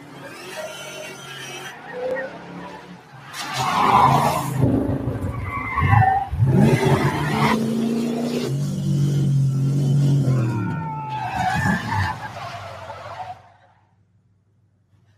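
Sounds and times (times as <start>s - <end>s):
car tires screeching while skidding: 0.0s - 14.0s
car engine rumbling while driving: 2.0s - 15.1s.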